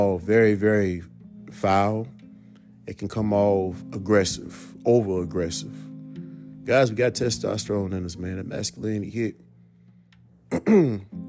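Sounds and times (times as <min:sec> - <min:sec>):
speech: 0:00.0 - 0:02.2, 0:02.9 - 0:05.9, 0:06.6 - 0:09.4, 0:10.6 - 0:11.2
man clearing his throat: 0:10.5 - 0:11.1.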